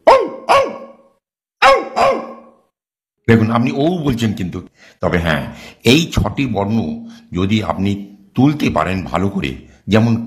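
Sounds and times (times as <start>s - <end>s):
human voice imitating a dog's bark: 0.0s - 2.6s
speech: 3.3s - 10.2s.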